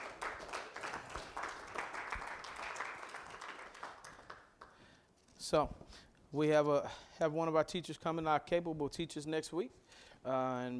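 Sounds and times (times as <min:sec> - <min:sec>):
crowd applauding: 0:00.0 - 0:04.8
speech: 0:05.5 - 0:10.7.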